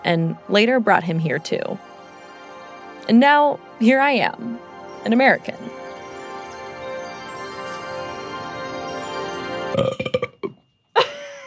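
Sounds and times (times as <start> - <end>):
speech: 0.0 - 1.9, 3.1 - 5.8, 9.8 - 10.2
long loud burp after reciting a poem: 9.7 - 10.6
short final belch: 9.7 - 10.6.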